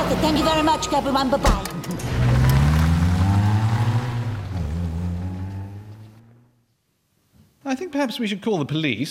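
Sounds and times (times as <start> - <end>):
heavy flatbed truck engine revving while backing up: 0.0 - 6.6
speech: 0.1 - 2.2, 7.7 - 9.1.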